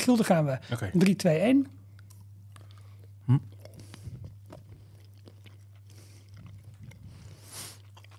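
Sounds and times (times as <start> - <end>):
speech: 0.0 - 1.8, 3.3 - 3.6
steady low electrical hum: 0.0 - 8.1
people chewing chocolate bonbons: 0.7 - 8.1.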